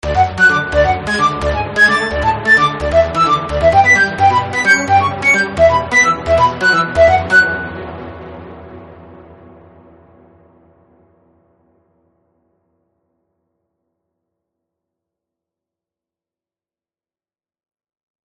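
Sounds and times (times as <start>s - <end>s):
funny flute music: 0.0s - 7.9s.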